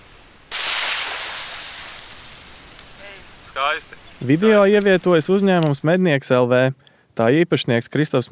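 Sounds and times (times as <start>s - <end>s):
hissing crackling noise after gas blast in mole burrow: 0.0s - 6.1s
gas explosion blasting a mole burrow from a blasting device: 0.5s - 5.0s
speech: 3.6s - 8.2s.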